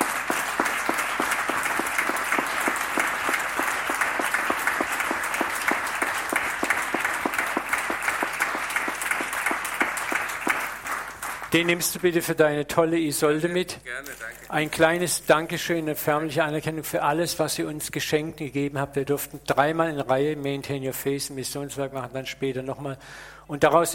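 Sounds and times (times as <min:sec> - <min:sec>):
room full of people applauding: 0:00.0 - 0:11.8
speech: 0:11.6 - 0:23.9.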